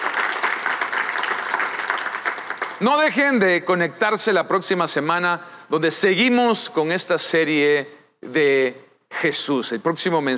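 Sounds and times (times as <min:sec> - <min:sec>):
large audience applauding: 0:00.0 - 0:03.3
speech: 0:02.8 - 0:10.3.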